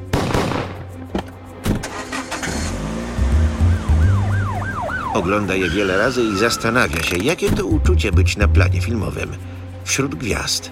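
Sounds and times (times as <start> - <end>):
car engines roaring and revving: 1.6 - 7.8
police siren wailing: 3.2 - 7.1
speech: 5.2 - 10.7.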